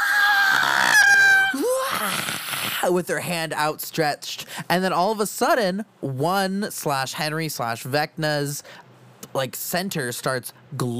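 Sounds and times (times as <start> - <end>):
person imitating a scream: 0.0 - 2.9
short rising vocal squeal: 0.0 - 2.9
speech: 2.8 - 10.9.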